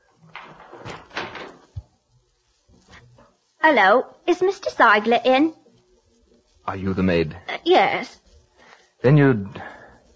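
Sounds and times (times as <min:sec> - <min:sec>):
dull thump of a door swinging or settling: 0:00.3 - 0:01.9
speech: 0:03.6 - 0:05.6, 0:06.7 - 0:08.2, 0:09.0 - 0:09.7.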